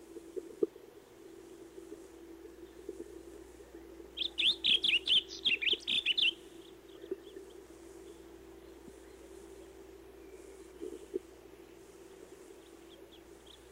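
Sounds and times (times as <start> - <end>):
constant low hum: 0.0 - 13.7
blue grosbeak melodious warbling song: 3.7 - 13.7.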